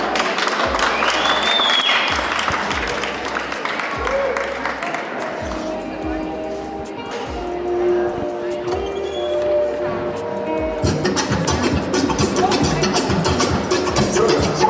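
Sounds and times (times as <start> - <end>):
crowd cheering: 0.0 - 5.4
crowd clapping for dancers at an Afrobeat dance performance: 0.0 - 5.7
rhythmic low Afrobeat music beat: 2.1 - 14.6.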